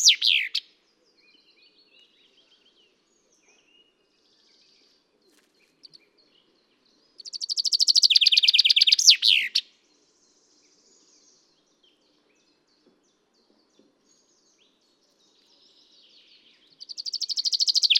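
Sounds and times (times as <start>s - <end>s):
common chaffinch Fringilla coelebs song: 0.0s - 17.9s.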